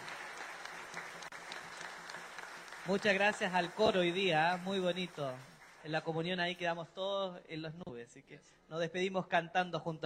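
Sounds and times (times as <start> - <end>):
audience applauding in a church: 0.0 - 6.1
speech: 2.9 - 10.0.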